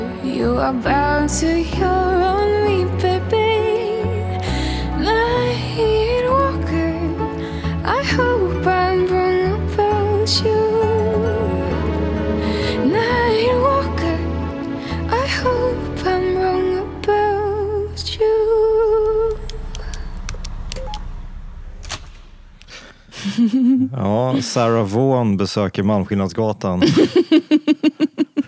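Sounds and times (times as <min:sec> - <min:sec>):
song with melodic sung vocal over bass and layered instruments: 0:00.0 - 0:21.3
speech: 0:00.4 - 0:03.4, 0:24.0 - 0:28.1
laughter: 0:23.1 - 0:24.8, 0:26.8 - 0:28.4.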